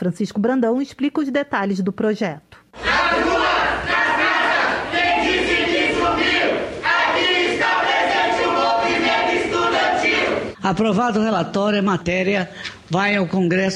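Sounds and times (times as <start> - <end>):
speech: 0.0 - 3.4, 10.6 - 13.7
large crowd of students cheering and chanting: 2.8 - 10.6.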